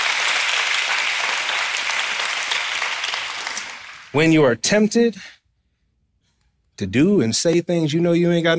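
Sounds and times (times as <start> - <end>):
large crowd at a worship service clapping and applauding: 0.0 - 4.2
speech: 4.1 - 5.4, 6.8 - 8.5.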